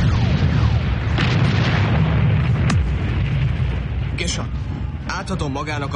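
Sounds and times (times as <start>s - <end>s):
heavy cannon firing canister shot: 0.0s - 4.4s
speech: 4.3s - 5.9s.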